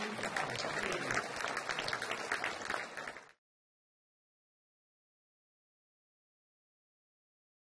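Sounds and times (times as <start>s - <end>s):
crowd applauding with many hands clapping: 0.0s - 3.4s.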